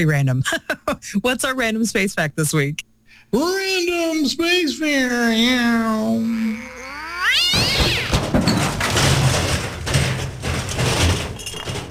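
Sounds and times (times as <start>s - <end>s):
speech: 0.0s - 6.7s
cat meowing and caterwauling: 5.6s - 8.2s
loud scratchy clattering noise: 7.6s - 11.8s.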